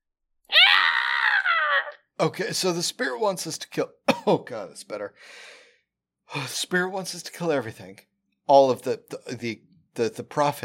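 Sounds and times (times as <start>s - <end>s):
non-human creature screeching in pain: 0.5s - 2.0s
speech: 2.2s - 5.6s, 6.3s - 10.6s.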